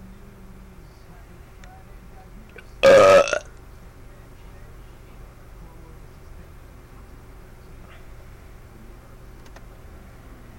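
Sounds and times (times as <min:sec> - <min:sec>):
loud belch: 0:02.8 - 0:03.5.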